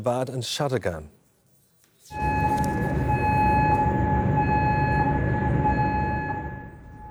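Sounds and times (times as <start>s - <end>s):
speech: 0.0s - 1.2s
air raid siren in Kuwait's capital during an Iranian missile and drone attack: 2.1s - 7.0s
heavy rumbling wash: 2.1s - 7.0s.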